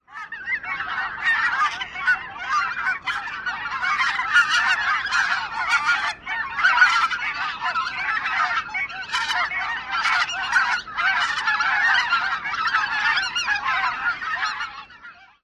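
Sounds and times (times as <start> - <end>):
flock of birds calling: 0.0 - 15.4.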